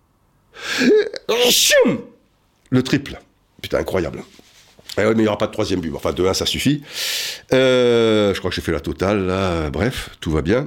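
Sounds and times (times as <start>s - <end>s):
person sneezing: 0.6s - 2.2s
speech: 0.8s - 2.1s, 2.7s - 4.4s, 5.0s - 10.6s.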